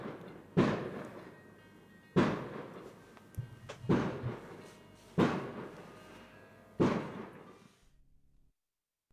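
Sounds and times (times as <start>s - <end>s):
smaller firework pops: 0.0s - 1.4s, 2.2s - 6.0s, 6.8s - 7.7s
fireworks bursting outside with deep booms: 0.0s - 6.2s, 6.8s - 7.8s.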